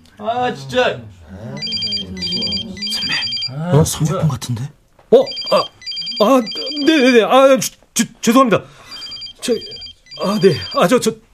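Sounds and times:
speech: 0.2s - 1.7s, 3.5s - 8.8s, 9.4s - 11.2s
mobile phone ringtone ringing: 1.6s - 3.6s, 5.2s - 7.3s, 8.9s - 11.0s.

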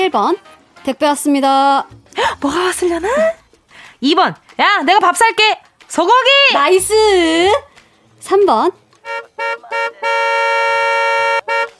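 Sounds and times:
speech: 0.1s - 3.4s, 4.0s - 8.8s
car horn honking: 9.0s - 11.7s.

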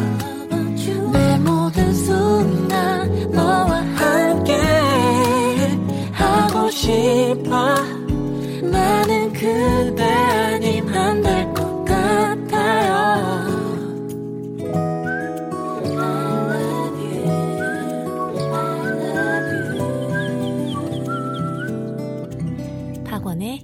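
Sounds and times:
steady instrumental backing music: 0.0s - 23.6s
bright whistled jingle tune: 14.7s - 22.4s.

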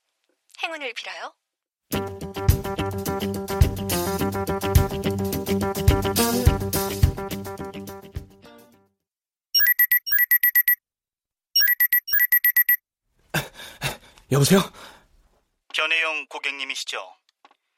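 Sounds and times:
speech: 0.7s - 3.5s, 14.4s - 14.9s, 16.7s - 17.2s
music: 1.9s - 8.9s
phone ringing with high electronic ringtone chirps: 9.6s - 10.8s, 11.6s - 12.8s.

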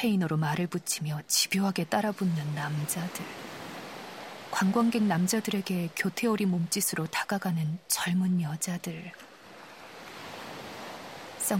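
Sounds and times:
speech: 0.0s - 3.6s, 4.5s - 9.3s
large waves crashing against a breakwater: 2.8s - 5.6s, 9.3s - 11.5s.

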